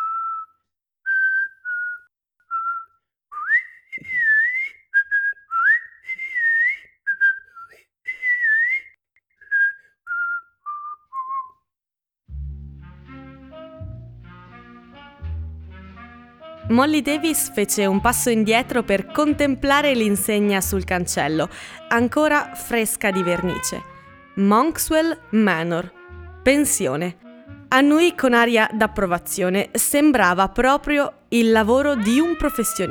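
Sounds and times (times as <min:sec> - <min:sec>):
person softly whistling a nursery-rhyme melody: 0:00.0 - 0:11.6
instrumental music with low bass: 0:12.3 - 0:21.3, 0:23.2 - 0:28.3
speech: 0:16.8 - 0:32.8.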